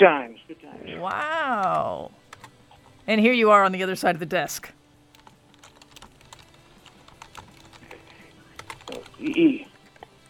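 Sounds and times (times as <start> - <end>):
speech: 0.0 - 2.2, 3.1 - 4.8, 8.9 - 9.7
child typing on a computer keyboard: 5.1 - 10.2.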